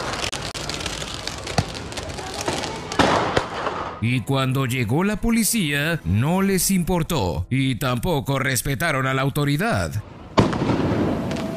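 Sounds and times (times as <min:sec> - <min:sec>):
fireworks fired in a dense crackling barrage: 0:00.0 - 0:04.3, 0:10.3 - 0:11.5
speech: 0:04.0 - 0:10.1.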